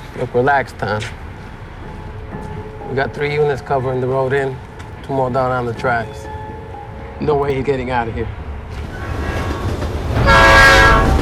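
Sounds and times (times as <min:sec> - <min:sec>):
train passing at night with rumble of wheels and carriages: 0:00.0 - 0:11.2
speech: 0:00.2 - 0:01.2, 0:02.9 - 0:06.3, 0:07.2 - 0:08.4
sustained train horn blast: 0:09.0 - 0:11.2.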